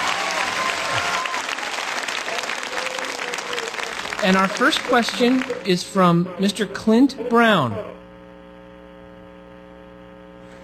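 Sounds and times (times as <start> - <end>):
sizable audience applauding a speaker: 0.0 - 5.8
speech: 4.2 - 8.0.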